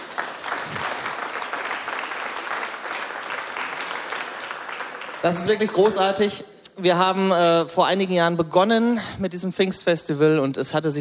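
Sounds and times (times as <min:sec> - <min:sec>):
crowd applauding at a Pentecost festival: 0:00.0 - 0:06.1
speech: 0:05.2 - 0:10.9.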